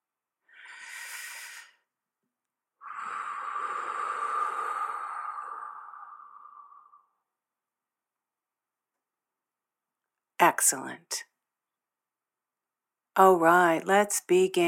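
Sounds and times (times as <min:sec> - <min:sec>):
person breathing in and out deeply: 0:00.4 - 0:02.0, 0:02.8 - 0:07.3
speech: 0:10.6 - 0:11.3, 0:13.2 - 0:14.6.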